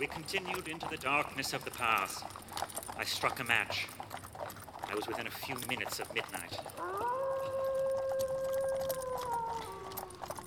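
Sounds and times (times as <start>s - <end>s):
speech: 0.0s - 4.2s, 4.9s - 7.2s
wolf howling down a road through a mountain pass: 6.6s - 10.4s.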